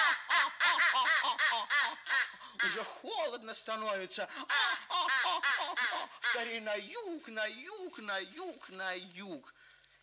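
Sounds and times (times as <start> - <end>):
ducks quacking: 0.0 - 3.0, 4.5 - 6.6
speech: 2.6 - 4.8, 6.3 - 9.6.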